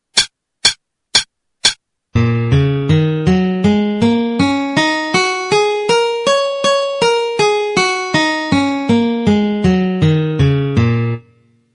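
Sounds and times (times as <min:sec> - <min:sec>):
E-flat minor pentatonic melody at 160: 0:02.2 - 0:11.3.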